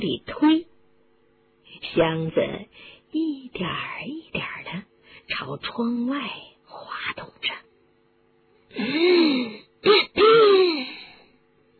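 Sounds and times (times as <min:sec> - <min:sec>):
speech: 0:00.0 - 0:00.7, 0:02.0 - 0:07.6, 0:08.7 - 0:10.9
man coughing: 0:09.8 - 0:10.7.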